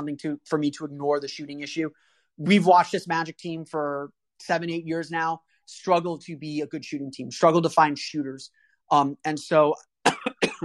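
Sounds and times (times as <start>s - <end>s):
speech: 0.0s - 10.6s
person coughing harshly: 10.0s - 10.6s.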